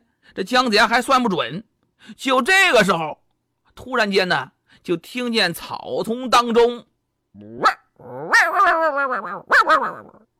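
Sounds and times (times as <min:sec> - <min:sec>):
speech: 0:00.3 - 0:03.2, 0:03.8 - 0:08.2, 0:08.8 - 0:10.2
dog barking and yelping: 0:07.4 - 0:10.3.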